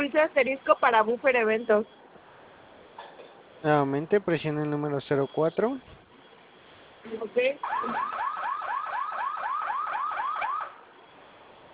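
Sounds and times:
speech: 0:00.1 - 0:02.0, 0:03.6 - 0:06.0, 0:07.0 - 0:08.2
electronic security alarm wailing from the alarm unit: 0:00.4 - 0:02.9, 0:04.8 - 0:11.6.

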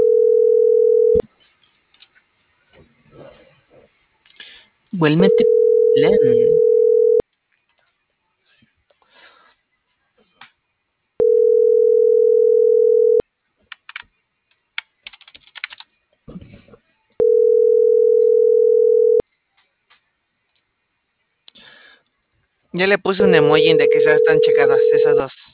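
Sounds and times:
phone line ringing tone: 0:00.0 - 0:01.2, 0:05.2 - 0:07.2, 0:11.2 - 0:13.2, 0:17.2 - 0:19.2, 0:23.2 - 0:25.2
speech: 0:05.0 - 0:06.7, 0:22.8 - 0:25.5
quiet keyboard typing and clicking: 0:13.7 - 0:14.1, 0:14.8 - 0:15.9.

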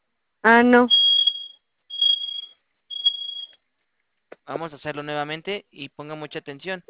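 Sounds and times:
speech: 0:00.4 - 0:01.0, 0:04.5 - 0:06.8
fire alarm panel sounding shrill high-pitched electronic tones: 0:00.9 - 0:03.6.

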